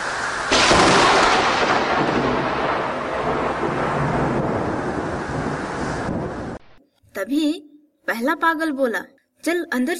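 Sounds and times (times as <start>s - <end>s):
dense steady rain hissing: 0.0s - 6.7s
loud crack of thunder rolling into heavy rumble: 0.0s - 6.8s
speech: 8.2s - 9.9s.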